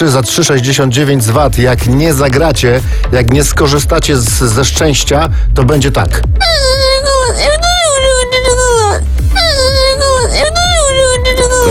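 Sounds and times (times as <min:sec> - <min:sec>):
speech: 0:00.0 - 0:10.7
person crying in long wavering wails: 0:06.4 - 0:11.6.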